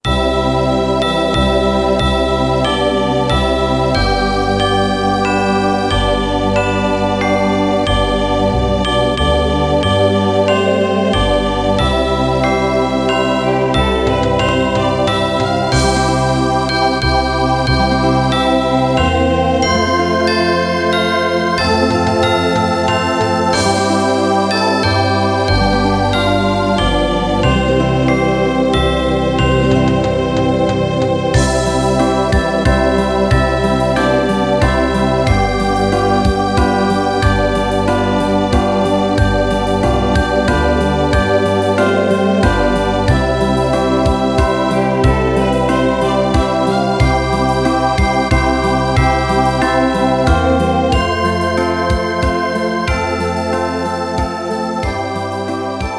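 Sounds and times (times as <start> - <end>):
children's Christmas song instrumental backing track: 0.0 - 55.9.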